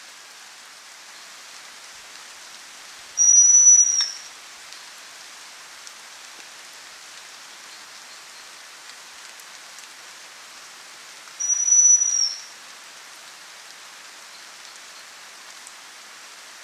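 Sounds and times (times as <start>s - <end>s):
background hiss: 0.0s - 16.6s
Chestnut-belted chat-tyrant thin high level whistle call: 3.2s - 4.3s, 11.4s - 12.5s.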